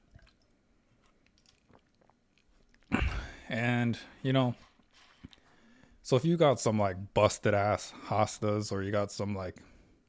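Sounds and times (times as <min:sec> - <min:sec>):
person sipping water: 0:00.1 - 0:03.4, 0:04.6 - 0:05.8
speech: 0:03.5 - 0:04.7, 0:06.1 - 0:09.7.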